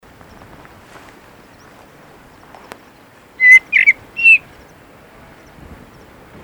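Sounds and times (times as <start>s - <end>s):
Common blackbird Turdus merula quick sharp notes: 3.4s - 4.5s.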